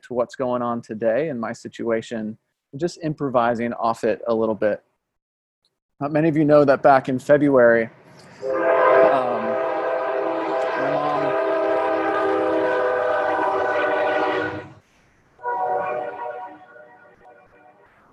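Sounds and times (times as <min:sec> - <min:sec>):
speech: 0:00.0 - 0:04.9, 0:06.0 - 0:08.6
low rumble of a passing train: 0:08.4 - 0:14.8
train horn blast: 0:08.4 - 0:14.8, 0:15.4 - 0:17.9.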